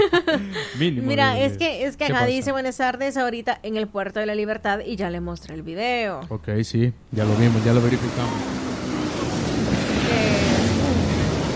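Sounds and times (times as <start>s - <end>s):
speech: 0.1s - 8.7s
rough sea surf crashing at Puerto de la Libertad: 7.2s - 11.5s.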